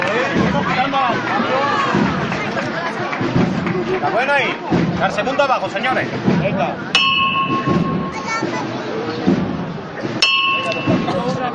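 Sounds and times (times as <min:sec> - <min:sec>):
murmur of a large outdoor crowd: 0:00.0 - 0:11.5
speech: 0:04.2 - 0:07.8
hammer striking the bell of a religious procession float: 0:07.0 - 0:08.4, 0:10.2 - 0:11.4.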